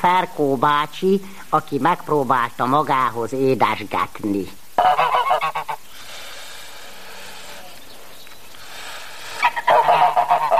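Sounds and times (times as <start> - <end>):
speech: 0.0 - 5.6
gander male domestic goose honking while waiting to be fed: 4.8 - 7.6, 8.7 - 10.5.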